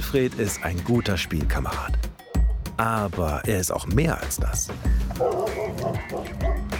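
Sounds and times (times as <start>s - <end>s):
speech: 0.1s - 2.1s, 2.8s - 6.6s
dog barking with short sharp yips: 5.2s - 6.7s.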